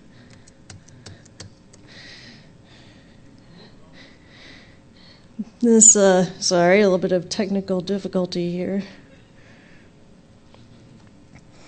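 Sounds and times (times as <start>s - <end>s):
low room hum: 0.0s - 11.6s
soft clicks from typing on a computer keyboard: 0.3s - 1.8s
speech: 5.6s - 9.0s.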